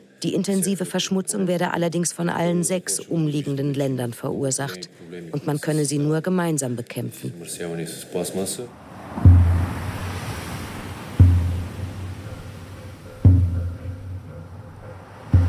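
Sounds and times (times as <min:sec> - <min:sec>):
speech: 0:00.2 - 0:09.3
wind: 0:08.3 - 0:15.4
heavy waves breaking on a rough sea: 0:08.5 - 0:15.4
constant rushing wash of surf: 0:08.6 - 0:15.4.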